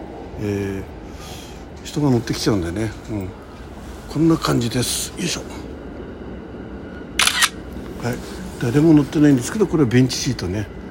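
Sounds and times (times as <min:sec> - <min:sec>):
speech: 0:00.4 - 0:03.4, 0:04.1 - 0:05.7, 0:08.0 - 0:10.8
camera shutter photographing bench seating inside a commuter train car: 0:07.2 - 0:07.6.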